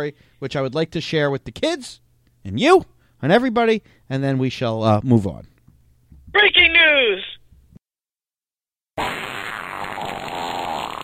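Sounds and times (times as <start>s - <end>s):
speech: 0.0s - 5.5s, 6.3s - 7.3s
loud drawn-out fart sound effect: 9.0s - 11.0s.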